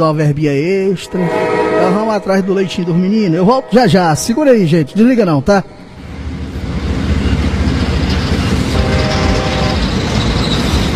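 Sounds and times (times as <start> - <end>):
speech: 0.0 - 5.8
train rumbling past: 0.8 - 10.9
clickety-clack of train wheels on rails: 6.2 - 10.9.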